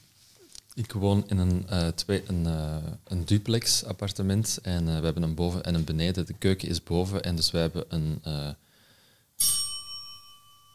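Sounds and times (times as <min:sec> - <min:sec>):
speech: 0:00.8 - 0:08.6, 0:09.4 - 0:09.6
small dinner bell ringing: 0:09.4 - 0:10.7.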